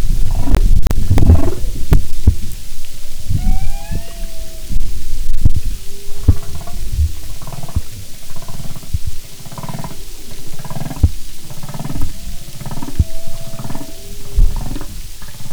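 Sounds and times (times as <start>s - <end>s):
humpback whale deep pulsed grunts and throbbing rumbles: 0.0s - 2.4s, 3.3s - 15.5s
faint tonal humpback whale moans: 3.2s - 15.5s.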